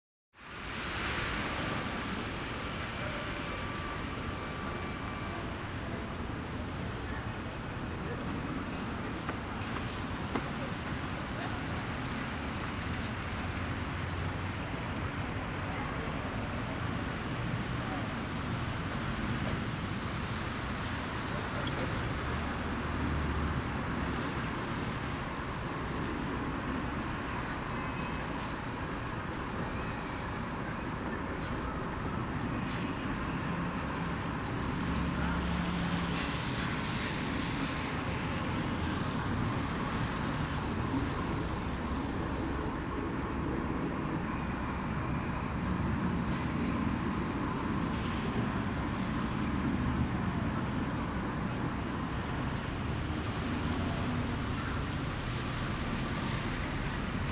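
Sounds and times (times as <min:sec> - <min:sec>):
wet street after summer rain: 0:00.4 - 0:57.3.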